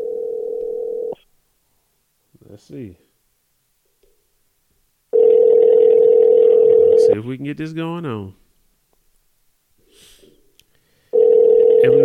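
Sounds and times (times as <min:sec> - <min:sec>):
telephone ringback tone buzzing: 0:00.0 - 0:01.2, 0:05.2 - 0:07.2, 0:11.1 - 0:12.0
speech: 0:02.6 - 0:03.1, 0:07.1 - 0:08.4.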